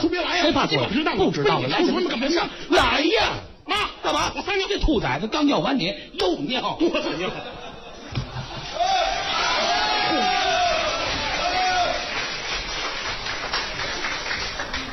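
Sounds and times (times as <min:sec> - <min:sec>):
speech: 0:00.0 - 0:07.6
person calling out: 0:02.7 - 0:04.4
laughter: 0:06.8 - 0:08.9
live audience applauding: 0:08.4 - 0:14.9.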